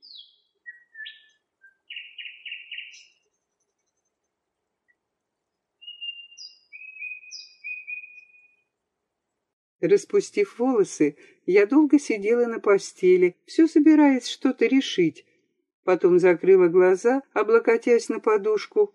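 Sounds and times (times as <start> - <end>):
nightingales singing: 0.0 - 3.2, 5.8 - 8.5
speech: 9.8 - 15.3, 15.9 - 18.9.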